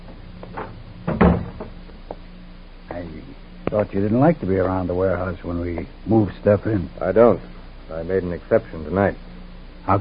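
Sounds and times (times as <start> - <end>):
door being closed in a warehouse with a clatter and heavy thud: 0.6 - 1.8
faint knock in a warehouse: 1.1 - 1.7
speech: 3.7 - 10.0.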